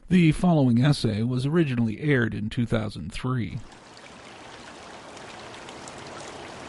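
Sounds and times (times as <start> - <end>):
speech: 0.1 - 3.8
Long Tom River rushing under rain-laden storm clouds: 3.7 - 6.6.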